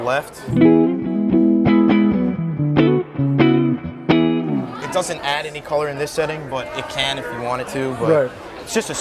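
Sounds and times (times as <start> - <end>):
speech: 0.0 - 0.9, 5.0 - 9.0
electric guitar riff through the clean boost side of a pedal: 0.5 - 5.0.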